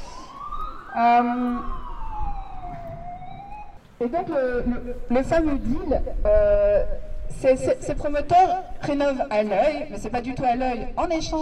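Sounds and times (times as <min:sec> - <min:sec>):
ambulance siren passing on a street in Brussels: 0:00.0 - 0:03.8
speech: 0:01.0 - 0:01.8, 0:04.0 - 0:11.3.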